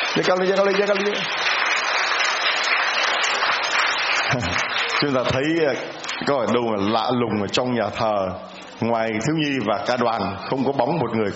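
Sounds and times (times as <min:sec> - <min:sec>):
large crowd applauding in a church: 0:00.0 - 0:06.9
speech: 0:00.2 - 0:01.5, 0:04.3 - 0:11.3.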